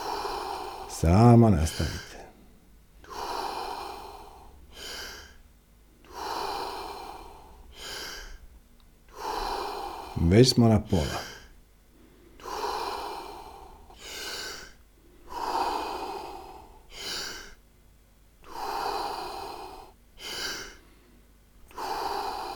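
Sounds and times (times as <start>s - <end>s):
slow deep circular breathing in and out: 0.0s - 17.7s, 18.4s - 22.5s
speech: 1.0s - 2.1s, 10.3s - 11.3s.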